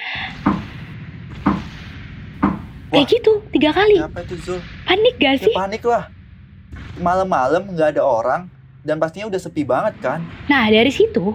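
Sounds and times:
sharp wooden knocks imitating knocking on a door: 0.4 - 0.8, 1.4 - 1.7, 2.4 - 2.7
speech: 2.9 - 6.2, 7.0 - 11.3.

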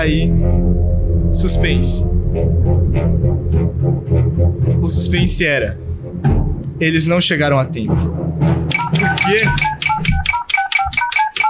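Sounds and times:
speech: 0.0 - 0.7, 1.3 - 3.2, 4.9 - 8.2, 9.3 - 9.7
low rumble: 0.0 - 7.1
electronic telephone ringing: 8.7 - 11.4.

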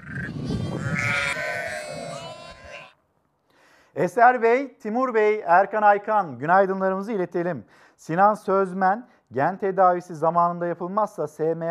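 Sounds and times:
sheep and lambs bleating: 0.0 - 2.9
speech: 4.0 - 11.6.

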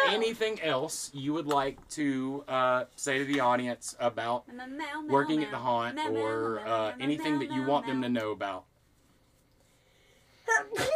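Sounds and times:
speech: 0.1 - 8.7, 10.5 - 10.9
person sneezing: 10.5 - 10.9.

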